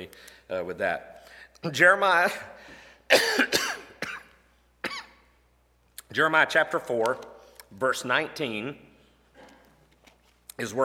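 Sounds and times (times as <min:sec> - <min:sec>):
speech: 0:00.0 - 0:03.7, 0:06.1 - 0:08.9, 0:10.6 - 0:10.8
person coughing while sucking on a piece of ginger: 0:03.1 - 0:05.2.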